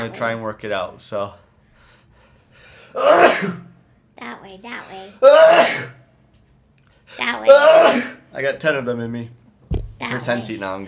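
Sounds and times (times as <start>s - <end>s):
speech: 0.0s - 1.4s, 2.9s - 6.0s, 7.1s - 9.4s, 10.0s - 10.8s
person sneezing: 2.9s - 3.7s, 5.2s - 6.0s, 7.5s - 8.2s.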